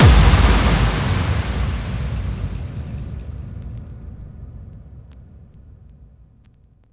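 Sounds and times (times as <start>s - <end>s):
bass drum kicks with reverb effect: 0.0s - 3.6s.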